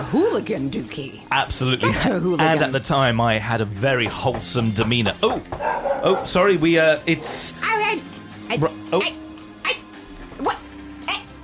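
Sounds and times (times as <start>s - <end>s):
speech: 0.1s - 7.7s, 8.5s - 9.2s
dog barking in short sharp yaps: 4.8s - 6.4s.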